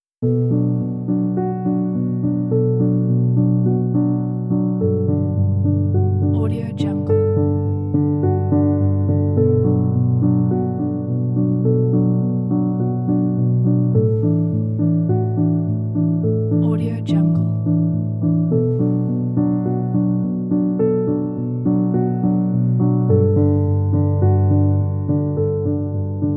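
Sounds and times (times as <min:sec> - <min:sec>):
calm documentary music: 0:00.3 - 0:26.3.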